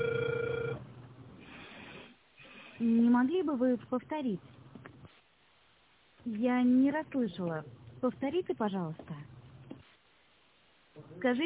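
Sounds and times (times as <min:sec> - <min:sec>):
telephone ringback tone while a call is being dialed: 0:00.0 - 0:00.8
speech: 0:02.8 - 0:04.6, 0:06.3 - 0:09.2, 0:11.2 - 0:11.4.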